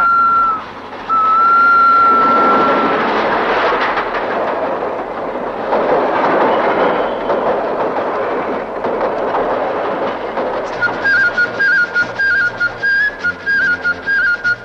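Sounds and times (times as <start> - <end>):
high whistle-like tone: 0.0 - 3.1, 10.8 - 14.6
train rumbling past a closed railway crossing gate: 0.0 - 14.6
train wheels clattering rhythmically on rails: 0.0 - 14.6.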